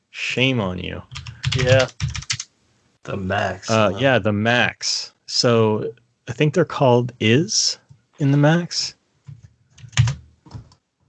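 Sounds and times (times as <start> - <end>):
speech: 0.4 - 2.2, 3.1 - 9.0
clacky mechanical keyboard typing a web search: 1.1 - 2.5, 9.8 - 10.7.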